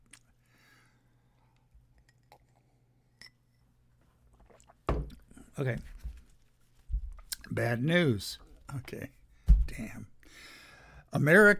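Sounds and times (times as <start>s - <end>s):
person quietly sipping a drink and swallowing: 4.4s - 5.3s
speech: 5.6s - 5.9s, 7.6s - 9.2s, 9.8s - 10.1s, 11.1s - 11.5s.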